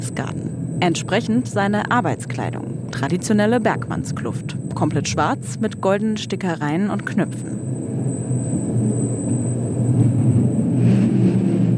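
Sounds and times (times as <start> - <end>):
mine train rolling through a low egg-shaped tunnel in a salt mine: 0.0 - 11.7
thin steady high whine of a mine train: 0.0 - 11.7
speech: 0.1 - 7.7.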